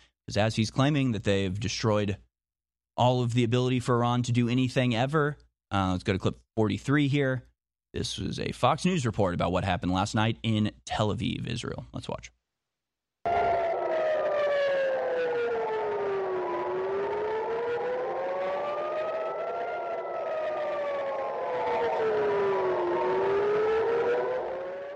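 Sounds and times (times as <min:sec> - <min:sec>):
speech: 0:00.3 - 0:02.3, 0:03.0 - 0:12.4
air raid sirens wailing over a city: 0:13.3 - 0:24.9.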